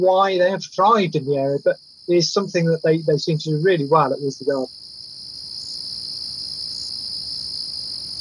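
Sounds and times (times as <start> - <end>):
speech: 0.0 - 4.8
wood crickets chirping in a dense continuous high trill: 0.0 - 8.1.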